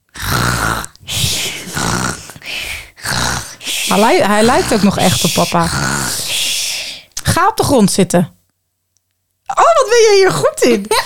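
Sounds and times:
child imitating a sleeping man's snoring: 0:00.0 - 0:07.1
speech: 0:03.9 - 0:05.9, 0:07.4 - 0:08.4, 0:09.9 - 0:11.0.

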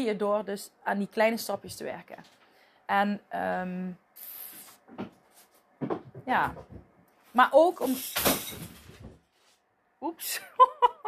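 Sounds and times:
speech: 0:00.0 - 0:05.2, 0:05.8 - 0:08.8, 0:10.0 - 0:10.7
vase hitting the floor and shattering: 0:08.0 - 0:08.9.

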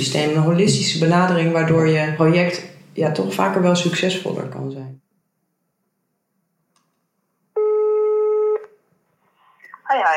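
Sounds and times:
speech: 0:00.0 - 0:05.0, 0:09.9 - 0:10.1
telephone ringing tone before call connects: 0:07.6 - 0:08.6.

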